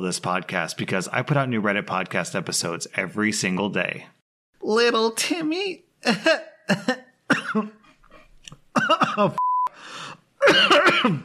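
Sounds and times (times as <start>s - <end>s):
speech: 0.0s - 7.8s, 8.8s - 9.4s, 10.4s - 11.2s
person coughing with sharp hacks and throaty fits: 6.2s - 9.4s, 10.4s - 11.2s.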